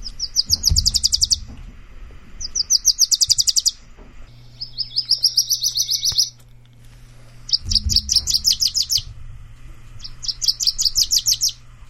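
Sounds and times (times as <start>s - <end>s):
Wilson's Warbler singing: 0.0s - 1.6s, 2.4s - 6.5s, 7.4s - 9.2s, 9.9s - 11.6s
faint low hum: 0.0s - 11.8s.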